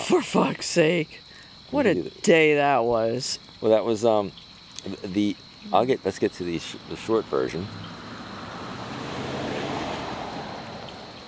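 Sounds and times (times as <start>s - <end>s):
speech: 0.1s - 8.0s
pickup truck driving past outside: 6.3s - 11.2s.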